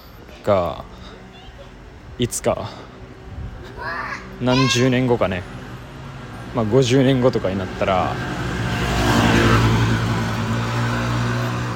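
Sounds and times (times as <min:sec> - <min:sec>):
speech: 0:00.4 - 0:00.9, 0:02.2 - 0:02.9, 0:03.8 - 0:05.6, 0:06.5 - 0:08.5
motorcycle engine roaring past: 0:07.1 - 0:11.7.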